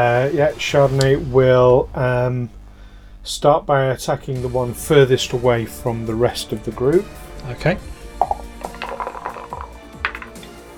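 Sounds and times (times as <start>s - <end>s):
speech: 0.0s - 2.6s, 3.2s - 8.3s
dice rolling on a hard table: 8.1s - 10.6s.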